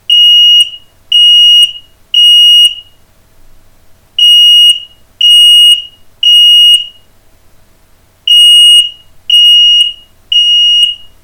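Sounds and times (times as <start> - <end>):
Smartwares RM218 smoke alarm sounding: 0.1 - 3.0, 4.2 - 7.0, 8.3 - 11.2.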